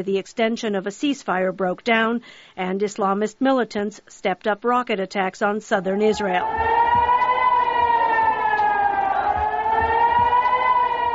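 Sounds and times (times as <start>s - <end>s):
speech: 0.0s - 6.8s
air raid siren wailing: 5.9s - 11.1s.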